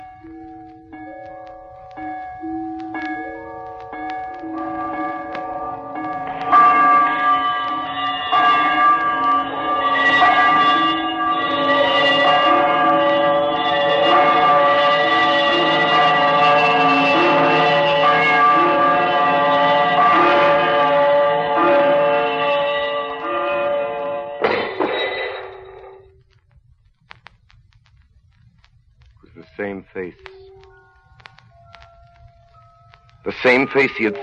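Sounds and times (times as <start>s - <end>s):
large old bell swinging and ringing: 0.0s - 26.2s, 29.4s - 34.2s
speech: 33.5s - 34.2s.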